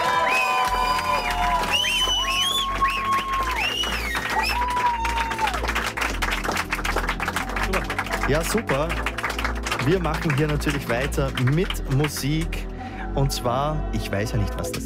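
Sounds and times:
whoops and cheers from a crowd: 0.0s - 6.0s
crowd applause: 0.0s - 12.5s
low droning background: 3.5s - 14.8s
speech: 8.3s - 9.1s, 9.8s - 12.6s, 13.2s - 14.8s.

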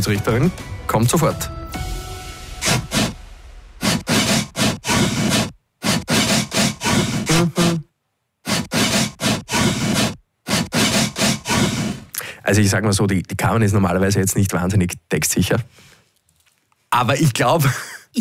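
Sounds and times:
speech: 0.0s - 1.6s, 12.5s - 16.0s, 16.9s - 18.1s
hand sawing through wood: 3.8s - 7.8s, 8.4s - 12.0s.

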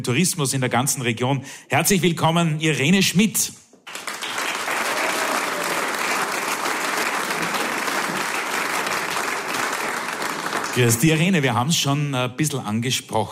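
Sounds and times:
speech: 0.0s - 4.1s, 10.8s - 13.3s
audience applause: 3.9s - 11.5s.

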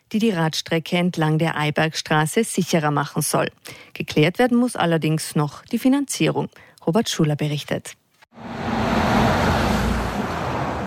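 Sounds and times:
speech: 0.1s - 8.8s
heavy traffic passing on a country road: 8.4s - 10.8s.

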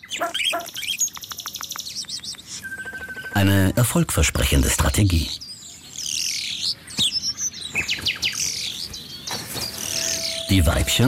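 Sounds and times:
starling mimicking a dog's barking: 0.0s - 1.0s
starling's quick high chirps and trills: 0.0s - 3.8s, 4.5s - 11.0s
speech: 3.4s - 5.4s, 10.5s - 11.0s.

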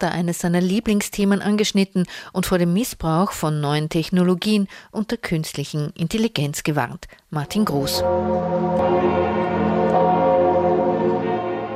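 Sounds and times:
speech: 0.0s - 10.0s
church bells of Notre Dame in France ringing for the Pope's arrival: 7.5s - 11.7s.

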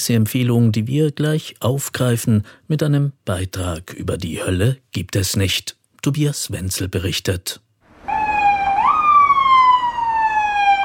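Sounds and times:
speech: 0.0s - 7.6s
loud ambulance siren passing on a city square: 7.9s - 10.8s.

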